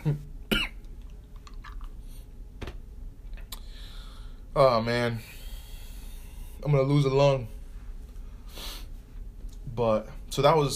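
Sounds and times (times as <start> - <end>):
speech: 0.0 - 0.2, 4.6 - 5.4, 6.6 - 7.6, 9.8 - 10.7
person coughing in sharp harsh bursts: 0.0 - 0.8.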